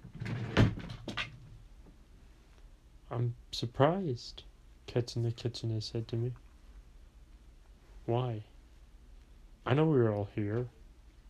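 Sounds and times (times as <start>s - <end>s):
door swinging shut with a thud: 0.0s - 1.3s
speech: 3.1s - 6.4s, 8.1s - 8.5s, 9.6s - 10.8s.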